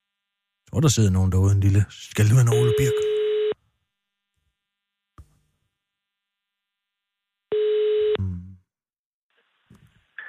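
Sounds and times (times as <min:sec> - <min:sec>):
speech: 0:00.7 - 0:03.2
telephone ringback tone over the line: 0:02.5 - 0:03.6, 0:07.5 - 0:08.2.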